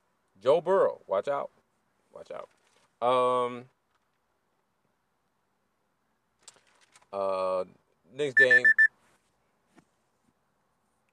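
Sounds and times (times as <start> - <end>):
speech: 0.4 - 3.8, 7.1 - 8.8
phone timer short high-pitched electronic beep: 8.4 - 8.9.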